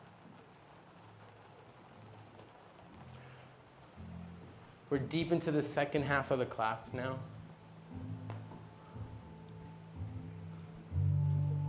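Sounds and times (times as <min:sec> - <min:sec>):
steady rainfall hissing with a low rumble: 0:00.0 - 0:11.6
speech: 0:04.9 - 0:07.4.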